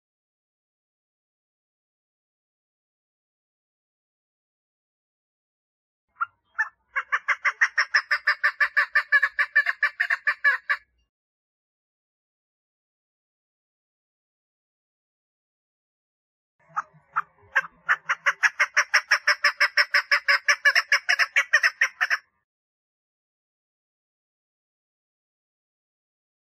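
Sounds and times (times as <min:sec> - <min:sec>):
partridge calling in rasping rhythmic notes: 0:06.1 - 0:10.8, 0:16.6 - 0:22.2.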